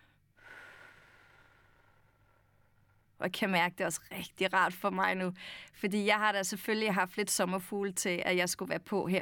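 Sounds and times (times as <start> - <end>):
slow exhale through pursed lips: 0.0 - 3.0
speech: 3.2 - 9.2.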